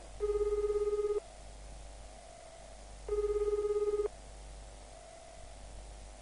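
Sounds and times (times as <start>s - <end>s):
low hum: 0.0s - 6.2s
telephone ringback tone: 0.2s - 1.2s, 3.1s - 4.1s.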